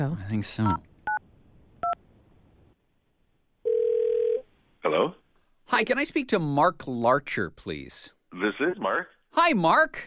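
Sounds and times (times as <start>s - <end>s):
speech: 0.0s - 0.9s, 4.8s - 10.0s
steady ringing tone on the phone line: 3.7s - 4.4s.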